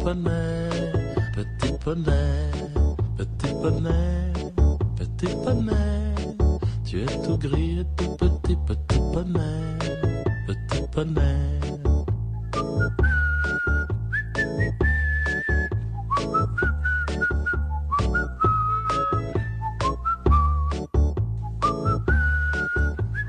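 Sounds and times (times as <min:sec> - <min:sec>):
speech: 0:00.0 - 0:04.3, 0:05.2 - 0:06.0, 0:06.9 - 0:10.0, 0:11.0 - 0:11.7
steady bouncy backing track: 0:00.0 - 0:23.2
people whistling a cheerful song melody: 0:00.3 - 0:02.7, 0:09.6 - 0:23.2.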